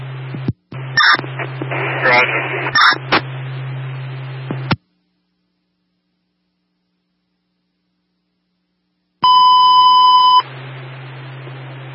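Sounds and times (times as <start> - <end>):
humming fire dispatch radio static: 0.0 - 6.1, 9.2 - 11.9
electronic fire alarm box dispatch tone on fire dispatch radio: 2.0 - 3.0, 9.2 - 10.4.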